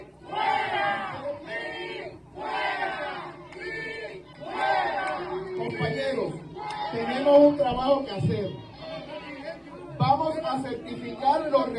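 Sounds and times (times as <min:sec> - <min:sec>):
rowdy crowd shouting and yelling in an uproar: 0:00.0 - 0:11.5
speech: 0:07.5 - 0:08.7, 0:10.5 - 0:11.7.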